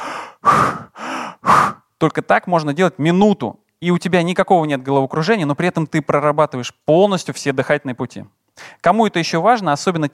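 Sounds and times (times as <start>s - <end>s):
person breathing deeply and forcefully: 0.0s - 1.9s
speech: 2.0s - 10.1s.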